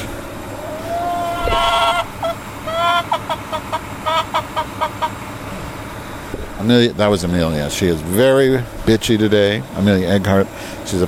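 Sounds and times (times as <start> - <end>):
steady low rumble: 0.0 - 11.0
chicken clucking and squawking: 0.5 - 5.3
speech: 6.6 - 11.0.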